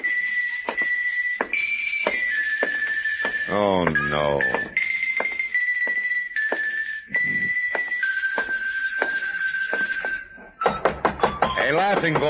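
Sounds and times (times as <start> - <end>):
high ringing tone: 0.0 - 10.7
speech: 3.5 - 4.8, 11.9 - 12.2
knocking on a door: 10.6 - 12.2.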